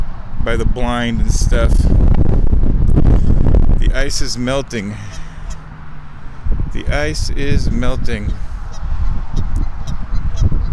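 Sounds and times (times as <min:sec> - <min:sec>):
low rumbling noise: 0:00.0 - 0:10.7
speech: 0:00.4 - 0:02.1, 0:03.8 - 0:05.2, 0:06.8 - 0:08.5
geese honking on partly frozen water near a weir: 0:04.3 - 0:06.5, 0:08.2 - 0:10.7.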